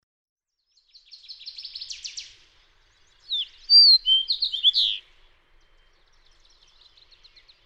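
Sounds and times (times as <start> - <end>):
Fox sparrow song with buzzy notes and sliding whistles: 3.3 - 5.0.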